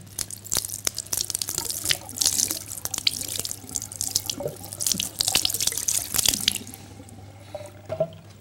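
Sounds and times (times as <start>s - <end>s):
water pouring from a container onto hands: 0.0s - 7.0s
water dripping: 0.0s - 8.3s.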